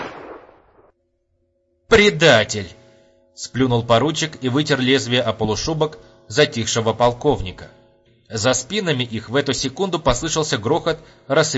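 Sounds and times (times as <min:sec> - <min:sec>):
gunshot fired from an officer's own weapon: 0:00.0 - 0:00.9
speech: 0:01.9 - 0:02.8, 0:03.4 - 0:11.5.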